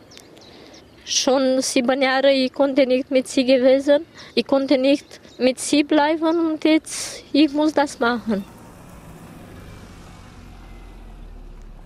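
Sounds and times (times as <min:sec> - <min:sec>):
speech: 0:01.1 - 0:08.5
car engine rumbling as the car pulls up and stops in a parking lot: 0:07.6 - 0:11.8.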